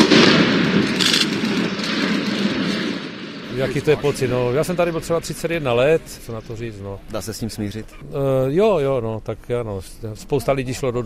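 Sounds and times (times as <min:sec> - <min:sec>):
explosive demolition of a 20,000-tonne mine skip tower with 141 kg of explosives: 0:00.0 - 0:06.3
speech: 0:03.6 - 0:11.0.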